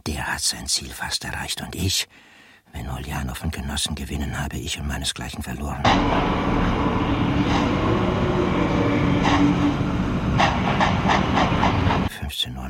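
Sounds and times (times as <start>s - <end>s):
speech: 0.0s - 9.9s, 12.3s - 12.6s
train standing at a station before departure hissing and rumbling: 5.8s - 12.1s.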